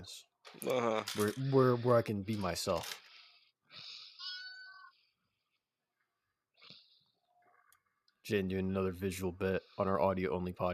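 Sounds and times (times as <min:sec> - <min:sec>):
speech: 0:00.0 - 0:03.0, 0:08.3 - 0:10.7
cat coin bank toy meow-like cries: 0:04.2 - 0:04.9.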